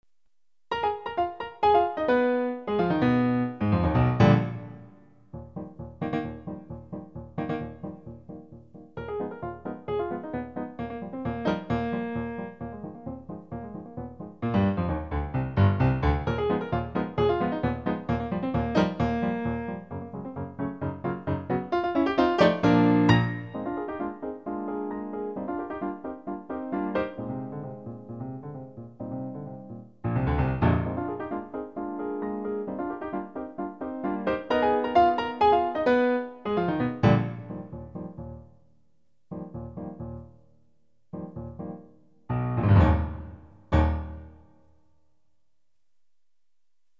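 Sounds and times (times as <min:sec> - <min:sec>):
concert grand piano: 0:00.6 - 0:45.5.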